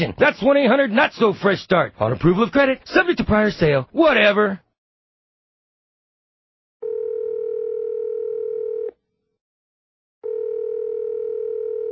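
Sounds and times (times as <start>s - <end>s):
speech: 0.0s - 4.6s
electronic telephone tone of a call ringing through to a cell phone: 6.8s - 9.0s, 10.2s - 11.9s.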